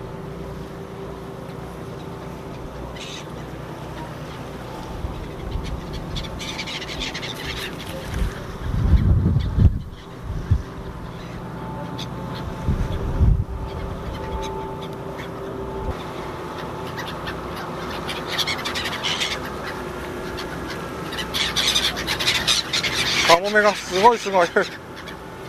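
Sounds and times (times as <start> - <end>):
wind: 0.0 - 25.4
seagulls squawking over the water: 0.1 - 25.4
steady low rumble: 8.0 - 16.2
speech: 23.6 - 24.8.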